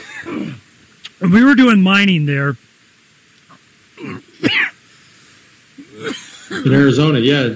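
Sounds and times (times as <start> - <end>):
person clearing throat to dislodge coffee grounds: 0.0 - 0.6, 4.0 - 4.8, 5.8 - 6.8
speech: 1.2 - 2.7, 6.0 - 7.5.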